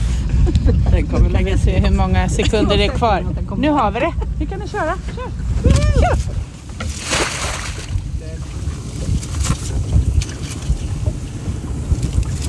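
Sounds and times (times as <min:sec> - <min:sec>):
steady boat engine rumble: 0:00.0 - 0:12.4
wind buffeting: 0:00.0 - 0:12.4
speech: 0:01.0 - 0:06.4
lobster pot dropped into the sea from a boat: 0:06.8 - 0:10.6.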